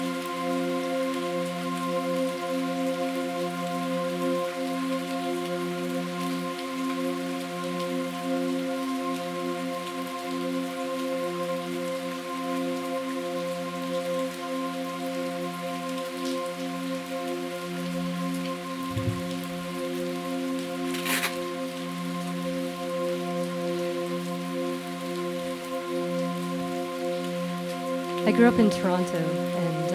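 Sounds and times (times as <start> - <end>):
steady rain falling outside a window: 0.0 - 29.9
low droning hum: 18.9 - 19.3
sharp crackle: 20.8 - 21.6
speech: 28.3 - 29.7.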